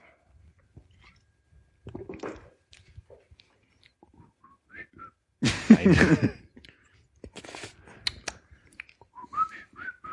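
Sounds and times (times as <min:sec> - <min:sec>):
laughter: 0:05.4 - 0:06.4
speech: 0:05.8 - 0:06.4
person whistling a short ringtone-like melody: 0:09.2 - 0:10.1.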